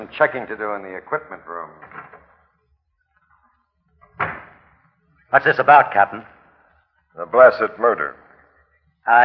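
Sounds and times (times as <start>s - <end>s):
speech: 0.0s - 2.2s, 5.3s - 6.3s, 7.2s - 8.2s, 9.0s - 9.2s
back door creaking open: 1.7s - 2.4s, 3.1s - 4.9s
back door shutting with a loud thud: 4.0s - 4.7s.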